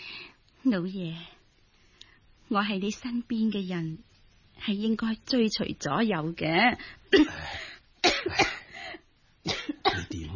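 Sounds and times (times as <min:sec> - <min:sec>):
speech: 0:00.6 - 0:01.4, 0:02.5 - 0:07.6
harsh throaty coughing: 0:07.1 - 0:08.8, 0:09.5 - 0:10.3.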